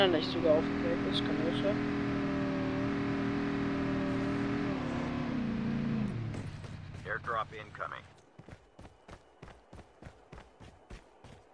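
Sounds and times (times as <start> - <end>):
speech: 0.0 - 2.0, 7.1 - 8.6
video game car engine droning while driving up a mountain: 0.0 - 9.1.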